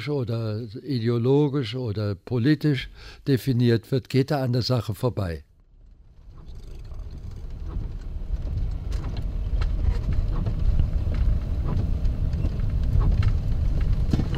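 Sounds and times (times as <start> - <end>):
speech: 0.0 - 5.5
scattered sharp raindrop ticks: 6.3 - 14.3
steady rain over a highway in the Hunsrück uplands: 7.7 - 14.3.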